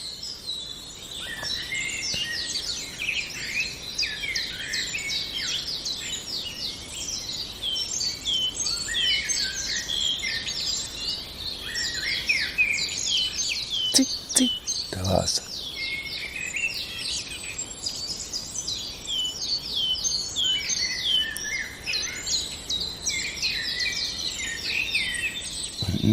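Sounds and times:
chorus of other birds chirping and trilling: 0:00.0 - 0:26.1
common chiffchaff singing: 0:13.9 - 0:15.5.

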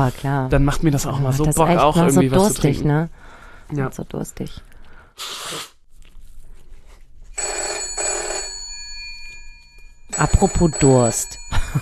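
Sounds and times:
speech: 0:00.0 - 0:05.7, 0:10.2 - 0:11.7
telephone ringing: 0:07.4 - 0:11.7.

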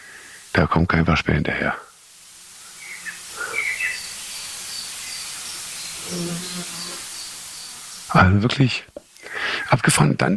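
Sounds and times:
steady hiss of outdoor noise: 0:00.0 - 0:10.3
speech: 0:00.6 - 0:01.9, 0:08.1 - 0:09.0, 0:09.7 - 0:10.3
blackbird giving sharp alarm calls: 0:02.5 - 0:08.2
faint bird chirps: 0:02.6 - 0:08.2.

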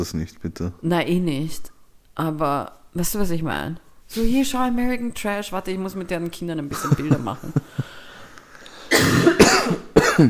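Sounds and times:
speech: 0:00.0 - 0:07.8
laughter: 0:06.7 - 0:08.0
two people coughing: 0:08.9 - 0:10.2.

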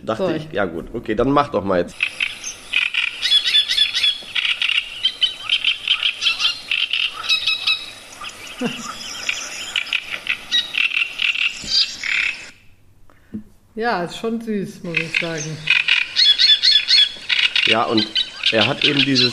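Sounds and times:
speech: 0:00.0 - 0:02.2, 0:08.6 - 0:08.9, 0:13.8 - 0:15.8, 0:17.7 - 0:19.3
person imitating great reed warbler song with harsh grating chatter: 0:01.9 - 0:12.5, 0:14.8 - 0:19.3.

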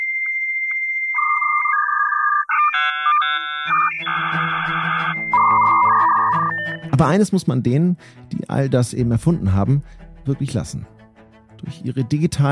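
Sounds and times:
dial-up modem dial tone: 0:00.0 - 0:06.8
dial-up modem dialing beeps: 0:00.7 - 0:06.9
speech: 0:03.6 - 0:04.4, 0:07.0 - 0:11.0, 0:11.6 - 0:12.5.

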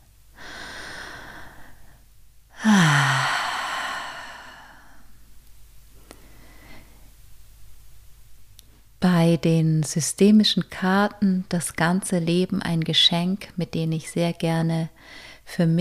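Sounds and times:
slow deep breathing in and out: 0:00.4 - 0:05.2, 0:06.1 - 0:07.1
speech: 0:09.3 - 0:15.7.

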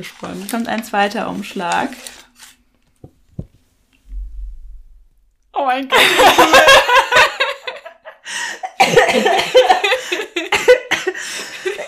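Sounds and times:
speech: 0:00.0 - 0:02.2, 0:05.6 - 0:06.8, 0:08.3 - 0:11.8
person coughing from laughing: 0:08.8 - 0:11.2.

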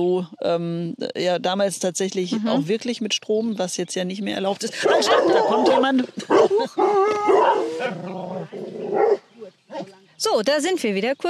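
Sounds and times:
speech: 0:00.0 - 0:09.2, 0:10.2 - 0:11.2
several dogs barking territorially: 0:04.8 - 0:09.9.

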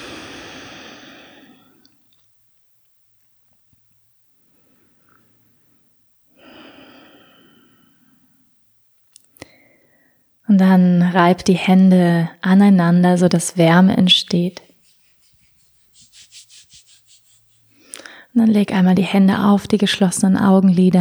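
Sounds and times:
slow deep breathing in and out during a guided relaxation exercise: 0:00.0 - 0:01.8, 0:06.4 - 0:08.4, 0:17.7 - 0:18.4
speech: 0:10.5 - 0:14.6, 0:18.4 - 0:20.9.

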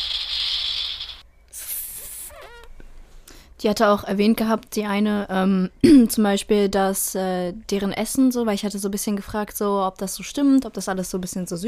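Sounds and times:
rattlesnake rattle sound effect triggered from a button: 0:00.0 - 0:01.2
speech: 0:03.6 - 0:11.6.

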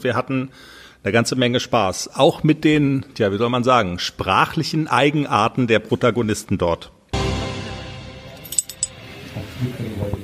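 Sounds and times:
speech: 0:00.0 - 0:07.0, 0:09.6 - 0:10.2
glasses clinking in a toast: 0:08.4 - 0:09.0.

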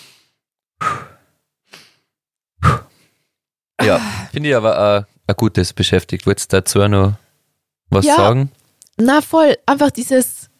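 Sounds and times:
deep breaths in and out: 0:00.0 - 0:03.4
speech: 0:03.9 - 0:07.2, 0:07.9 - 0:10.5.

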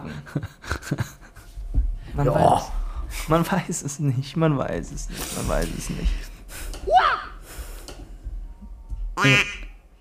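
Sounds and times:
laughter: 0:00.0 - 0:01.4
speech: 0:00.1 - 0:01.2, 0:02.2 - 0:06.3
nasal duck quacks sound effect: 0:09.2 - 0:09.7.

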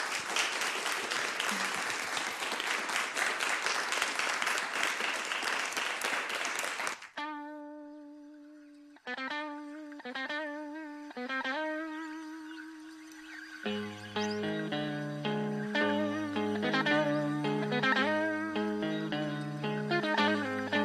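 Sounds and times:
audience applauding panel speakers after a public discussion: 0:00.0 - 0:07.2
sustained electronic musical tones: 0:07.7 - 0:20.8.

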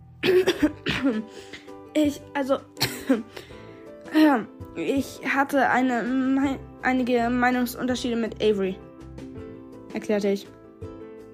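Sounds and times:
person coughing after choking on bread: 0:00.2 - 0:01.7, 0:02.8 - 0:03.5
speech: 0:00.2 - 0:03.5, 0:04.1 - 0:08.9, 0:10.0 - 0:10.6.

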